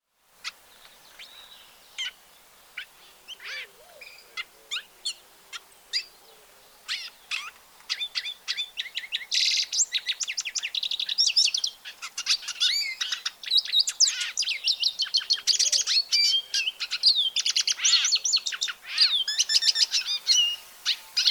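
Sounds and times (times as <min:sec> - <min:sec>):
siskin calling: 0:00.4 - 0:21.3.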